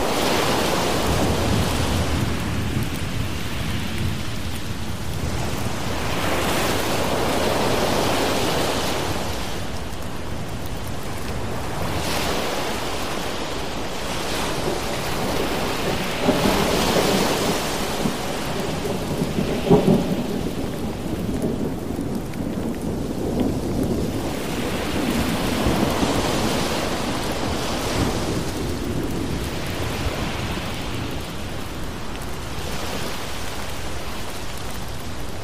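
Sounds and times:
dense rain hissing: 0:00.0 - 0:35.4
ocean waves: 0:00.0 - 0:35.4
low rumbling thunder: 0:00.4 - 0:08.4, 0:14.5 - 0:32.0.

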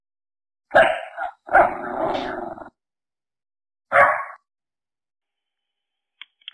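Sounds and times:
German Shepherd dog barking and growling: 0:00.7 - 0:02.8, 0:03.9 - 0:04.5.

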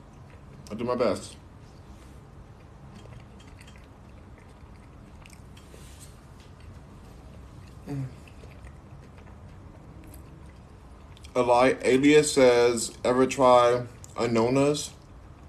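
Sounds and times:
biting and chewing food: 0:00.0 - 0:11.4
speech: 0:00.7 - 0:01.4, 0:07.9 - 0:08.2, 0:11.4 - 0:15.0.

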